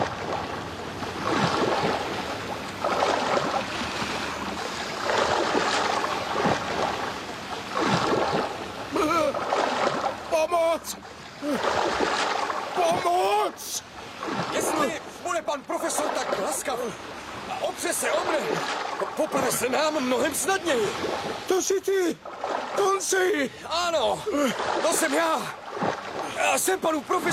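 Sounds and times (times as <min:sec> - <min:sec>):
churning water splashing as a person falls into the sea: 0:00.0 - 0:27.3
sea waves rushing: 0:00.0 - 0:27.3
human vocal sounds: 0:08.9 - 0:09.4, 0:10.3 - 0:11.7, 0:23.3 - 0:25.5
speech: 0:19.9 - 0:22.3, 0:23.0 - 0:25.6, 0:26.4 - 0:27.3.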